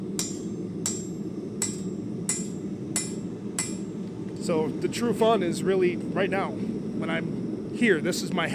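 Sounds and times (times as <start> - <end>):
blacksmith's hammer blows on anvil finishing a forged piece: 0.2 - 4.0
speech: 4.5 - 8.5.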